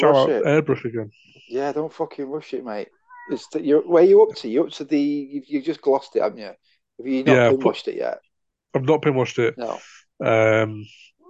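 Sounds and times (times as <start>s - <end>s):
speech: 0.0s - 11.1s
female pet cat meowing: 3.1s - 3.6s.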